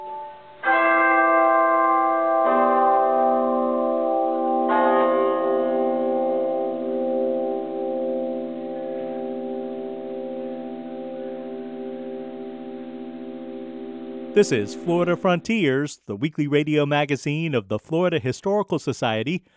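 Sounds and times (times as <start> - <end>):
large bells ringing in a bell tower in White Springs, Florida: 0.0 - 10.8, 14.4 - 15.8
speech: 14.4 - 19.5.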